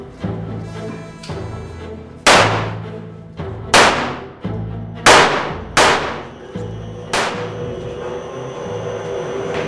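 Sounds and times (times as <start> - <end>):
sport-pistol gunshots at a shooting range: 2.3 - 2.8, 3.8 - 4.3, 5.1 - 6.3, 7.1 - 7.6
steady low hum: 5.2 - 9.6.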